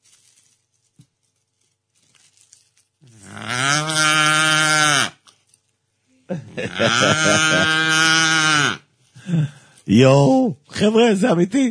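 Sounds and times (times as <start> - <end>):
man imitating a cow mooing: 3.2 - 5.1, 6.7 - 8.8
laughter: 6.3 - 8.0
speech: 6.7 - 8.2, 9.9 - 11.6.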